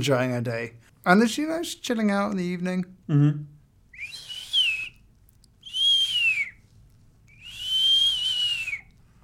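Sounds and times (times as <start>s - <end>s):
speech: 0.0s - 3.5s
eerie high whistles in a played recording: 4.0s - 5.0s, 5.6s - 6.6s, 7.3s - 8.9s.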